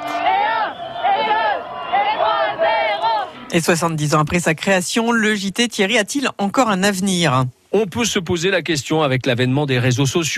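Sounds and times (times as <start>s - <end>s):
celebrating crowd roaring and chanting around a bus on a Paris avenue: 0.0s - 3.6s
speech: 3.5s - 10.3s.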